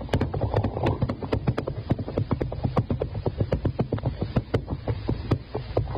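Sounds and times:
horse hooves clip-clopping: 0.0 - 5.9
low rumbling background: 0.0 - 5.9.

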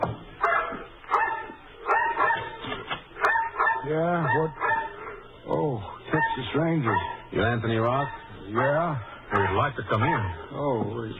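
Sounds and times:
mongrel dog barking on a rickety porch: 0.4 - 5.2, 6.1 - 10.5
speech: 6.4 - 11.1.

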